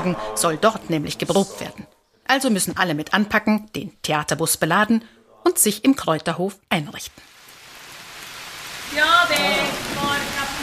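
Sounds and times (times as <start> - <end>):
speech: 0.0 - 7.3, 8.9 - 10.3
rain hissing on an open-air theatre stage in Islikon: 7.1 - 10.6.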